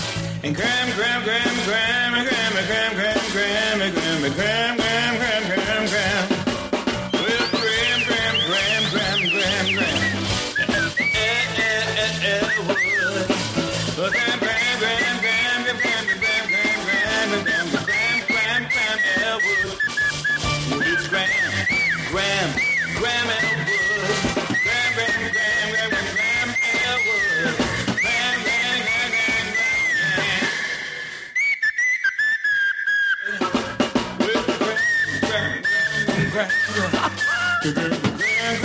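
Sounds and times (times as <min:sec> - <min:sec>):
speech: 0:00.4 - 0:06.0
person whistling a wavering tune: 0:06.9 - 0:38.6
laughter: 0:07.1 - 0:13.4, 0:14.1 - 0:30.4, 0:35.2 - 0:38.6.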